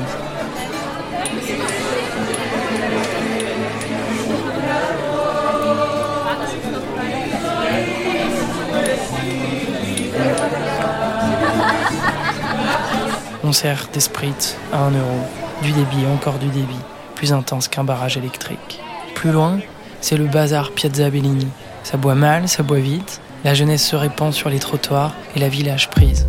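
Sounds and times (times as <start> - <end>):
packed street crowd chattering outside bars in the Spanish Quarter of Naples: 0.0 - 26.2
people laughing: 1.4 - 13.8
speech: 13.5 - 26.2.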